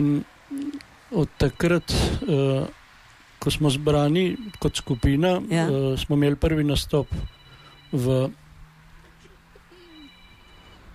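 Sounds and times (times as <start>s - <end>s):
speech: 0.0s - 0.3s, 1.1s - 2.8s, 3.4s - 8.4s
mobile phone electronic ringtone during a live radio broadcast: 4.1s - 5.4s, 6.5s - 8.4s, 9.7s - 10.9s
soft murmuring: 9.6s - 10.2s.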